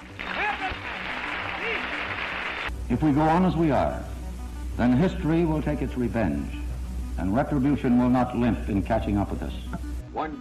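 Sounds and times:
audience clapping on cue: 0.0s - 2.7s
speech: 2.9s - 4.1s, 4.8s - 6.6s, 7.2s - 10.3s.

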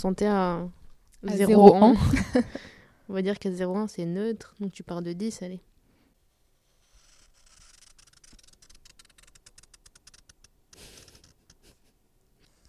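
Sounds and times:
speech: 0.0s - 5.7s
laughter: 1.8s - 2.8s
felt-tip marker drawing on paper: 6.6s - 11.9s.

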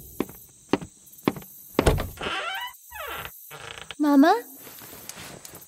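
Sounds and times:
dull footsteps down stairs: 0.0s - 2.2s
door clunking and creaking open with a scraping sliding sound: 1.8s - 4.1s
speech: 4.0s - 4.5s.

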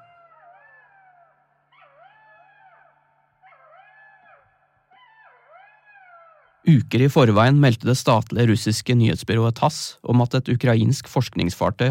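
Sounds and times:
chorus of jackals howling around a town in the evening: 0.0s - 6.6s
speech: 6.7s - 11.8s.

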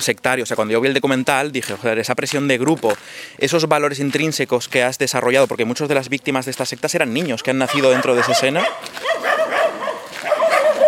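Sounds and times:
speech: 0.0s - 9.2s
several dogs barking and whimpering with yips and whines: 7.3s - 10.8s.

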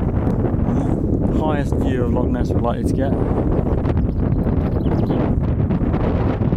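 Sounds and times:
strong wind buffeting the microphone: 0.0s - 6.5s
speech: 1.4s - 4.4s.

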